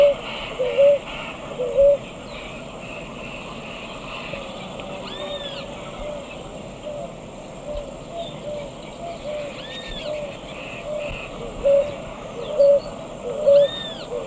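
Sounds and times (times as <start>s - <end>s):
ruddy ground-dove giving short low coos in the eastern lowlands of South America: 0.0s - 2.1s, 5.0s - 14.2s
steady insect hiss: 0.0s - 14.2s.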